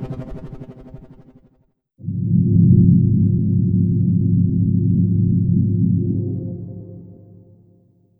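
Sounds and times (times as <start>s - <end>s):
background ambience: 2.0s - 7.8s.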